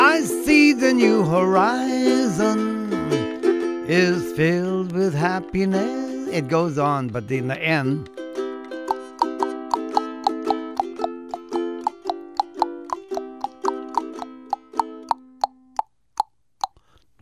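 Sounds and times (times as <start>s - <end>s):
speech: 0.2s - 2.7s, 3.9s - 8.2s
plucky bouncing melody: 8.0s - 16.8s.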